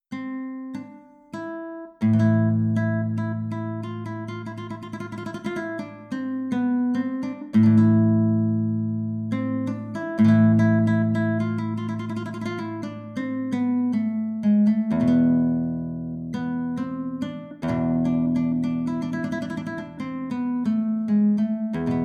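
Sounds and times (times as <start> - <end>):
Spanish guitar improvisation: 0.1 - 22.0.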